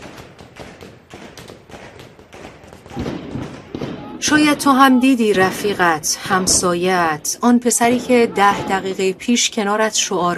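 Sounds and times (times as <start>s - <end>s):
rapid gunshot cracks from military weapons: 2.9s - 4.2s
speech: 4.2s - 10.3s.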